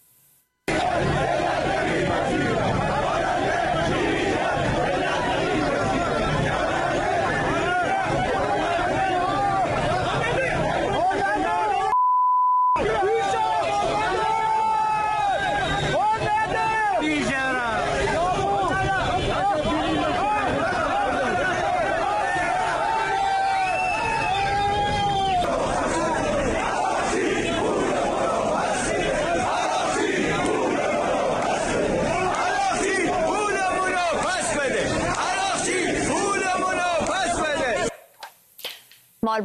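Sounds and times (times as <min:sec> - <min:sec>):
large crowd shouting and chanting outdoors: 0:00.7 - 0:12.0, 0:12.8 - 0:38.1
electronic beep: 0:11.9 - 0:12.8.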